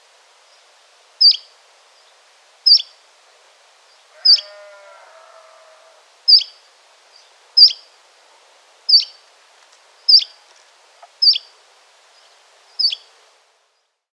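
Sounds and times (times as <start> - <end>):
Canary Islands chiffchaff calls: 1.2 - 2.1, 2.7 - 3.0, 3.9 - 7.9, 8.9 - 9.2, 10.0 - 11.5, 12.1 - 13.1.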